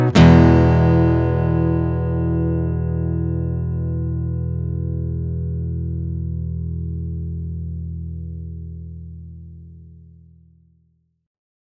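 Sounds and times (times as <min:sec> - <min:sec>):
open E chord: 0:00.1 - 0:08.0.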